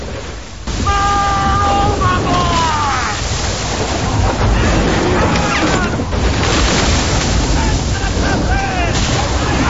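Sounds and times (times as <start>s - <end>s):
stormy sea waves crashing around a sailing ship: 0.0s - 9.6s
wind over a stormy sea: 0.0s - 9.6s.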